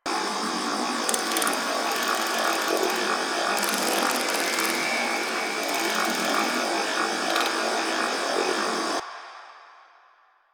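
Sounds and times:
computer loop: 1.0s - 9.0s.

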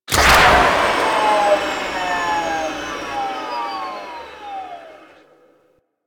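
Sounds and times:
skiff engine boosting at medium power and stopping: 0.0s - 5.6s.

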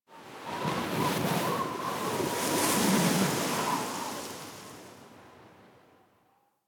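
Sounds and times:
large wind gust on plains: 0.3s - 5.0s.

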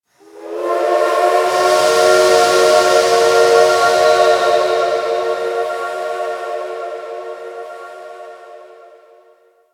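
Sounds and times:
distant train horn at shipyards: 0.2s - 9.6s.

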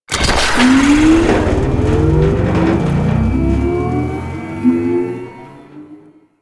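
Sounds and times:
skiff engine boosting slowly: 0.1s - 6.1s.

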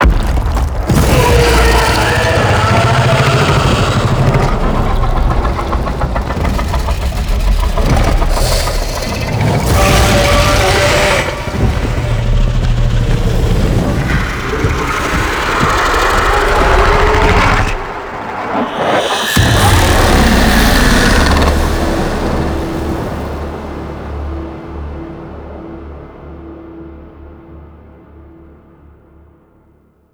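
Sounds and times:
monster spawn fire effect: 0.0s - 23.5s.

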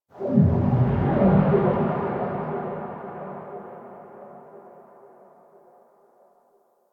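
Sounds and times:
spaceship exterior space ambience waves: 0.1s - 5.1s.

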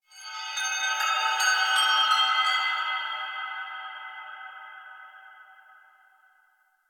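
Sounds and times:
chimes: 0.1s - 4.0s.

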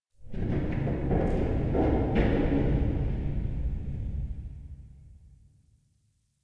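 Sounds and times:
tense metallic cave ambience: 0.3s - 5.2s.

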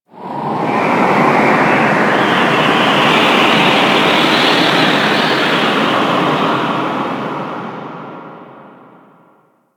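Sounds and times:
moon space wind ambience: 0.1s - 9.3s.

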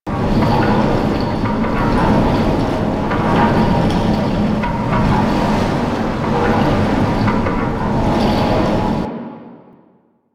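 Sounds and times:
water engine loop: 0.1s - 9.1s.

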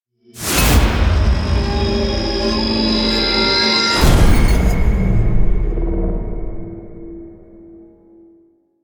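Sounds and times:
enemy death stinger: 0.4s - 7.6s.

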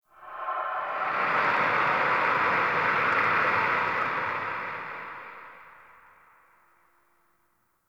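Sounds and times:
corrupted toxic wind gust: 0.1s - 5.8s.

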